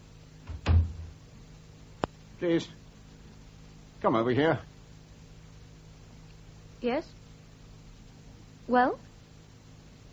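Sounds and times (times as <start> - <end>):
faint steady hiss: 0.0 - 10.1
door being shut: 0.5 - 1.2
speech: 2.4 - 2.8, 4.0 - 4.7, 6.8 - 7.2, 8.7 - 9.1.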